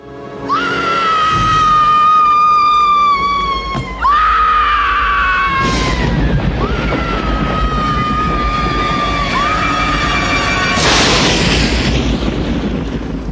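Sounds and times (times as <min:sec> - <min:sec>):
woman screaming in a horror film: 0:00.4 - 0:10.8
deep rumbling thunder with loud crashing booms: 0:04.8 - 0:13.2.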